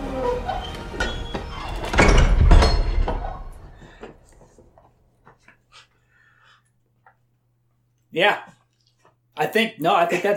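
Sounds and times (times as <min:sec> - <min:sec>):
heavy door sliding and grinding shut: 0:00.5 - 0:03.8
speech: 0:08.2 - 0:08.5, 0:09.4 - 0:10.3.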